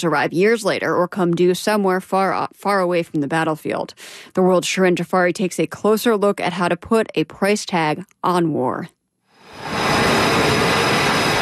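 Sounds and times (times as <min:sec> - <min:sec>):
speech: 0:00.0 - 0:09.0
fighter jet taking off from an aircraft carrier deck in the Strait of Hormuz: 0:09.4 - 0:11.3.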